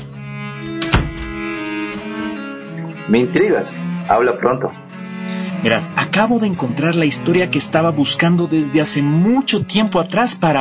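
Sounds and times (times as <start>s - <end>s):
door closing with a dull thunk: 0.6s - 1.4s
steady low tone: 2.7s - 10.2s
speech: 3.1s - 4.8s, 5.6s - 10.5s.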